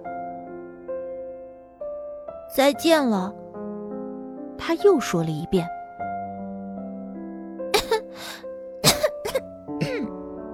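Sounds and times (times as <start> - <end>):
soft steady musical backdrop: 0.0 - 10.5
speech: 2.5 - 3.4, 4.6 - 5.8
dry throaty coughs: 7.8 - 8.2, 8.8 - 10.2.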